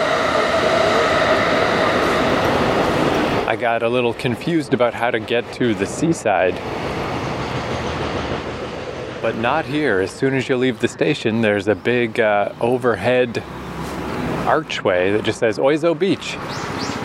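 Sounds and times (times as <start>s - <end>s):
train arriving at station with a loud rushing roar: 0.0s - 17.0s
speech: 3.6s - 6.9s, 9.2s - 13.6s, 14.5s - 16.8s.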